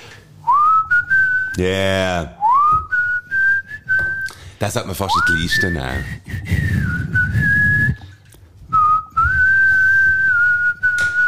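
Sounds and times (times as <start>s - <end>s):
person whistling a slow song melody: 0.4s - 1.6s, 2.4s - 4.4s, 5.1s - 8.0s, 8.7s - 11.2s
speech: 1.6s - 2.8s, 4.6s - 6.7s.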